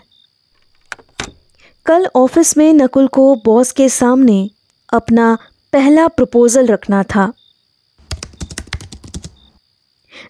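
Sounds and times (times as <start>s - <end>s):
speech: 1.9s - 7.4s
laptop keyboard typing: 8.0s - 9.6s.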